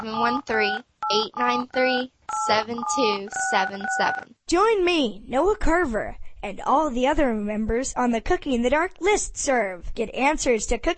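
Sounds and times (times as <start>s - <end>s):
short electronic beeps like telephone keypad dialing: 0.0s - 4.2s
speech: 0.0s - 10.9s.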